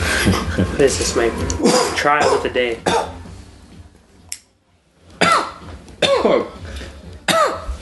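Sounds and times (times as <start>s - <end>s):
laughter: 0.0s - 1.1s
speech: 0.2s - 3.1s, 6.2s - 6.6s
person coughing harshly after smoking weed from a pipe: 1.6s - 3.2s, 5.2s - 6.6s, 7.3s - 7.7s.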